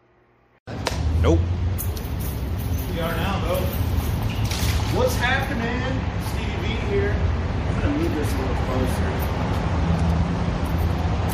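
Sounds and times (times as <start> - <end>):
road traffic passing: 0.7 - 11.3
speech: 1.2 - 1.5, 5.0 - 10.5.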